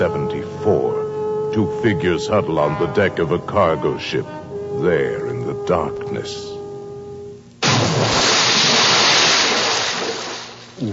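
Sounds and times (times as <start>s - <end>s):
speech: 0.0s - 0.8s, 1.6s - 6.5s
heavy load of tea splashing into Boston Harbor water: 7.6s - 10.7s.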